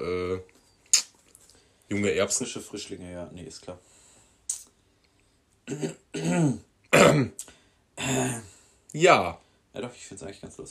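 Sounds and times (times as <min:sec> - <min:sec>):
speech: 0:01.9 - 0:04.0, 0:05.7 - 0:10.6
coughing: 0:05.6 - 0:08.5
throat clearing: 0:05.7 - 0:08.5.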